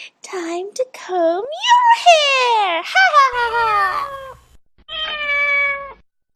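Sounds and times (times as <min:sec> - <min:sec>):
speech: 0:00.3 - 0:04.2
person imitating a cat meowing: 0:01.7 - 0:06.3.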